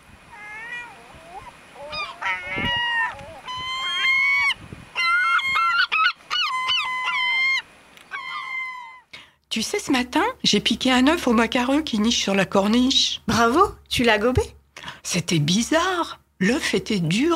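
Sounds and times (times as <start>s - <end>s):
flock of gulls calling: 0.0s - 9.1s
speech: 9.6s - 17.3s.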